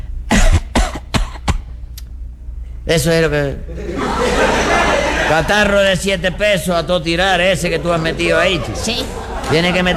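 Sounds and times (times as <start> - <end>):
man coughing in a forced, exaggerated way: 0.3 - 1.8, 3.4 - 4.2
speech: 2.9 - 9.9
laughter: 3.3 - 6.0, 7.2 - 9.9.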